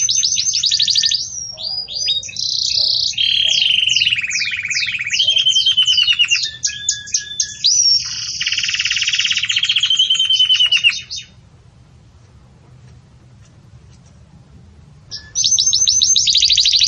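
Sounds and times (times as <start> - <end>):
Belgian canary bell-like warbling song with rapid trills: 0.0 - 11.4, 15.1 - 16.8.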